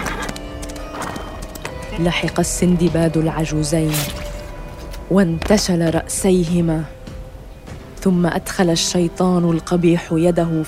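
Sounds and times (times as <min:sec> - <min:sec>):
horse hooves clip-clopping: 0:00.0 - 0:03.0
speech: 0:02.0 - 0:04.4, 0:05.1 - 0:07.0, 0:08.0 - 0:10.6.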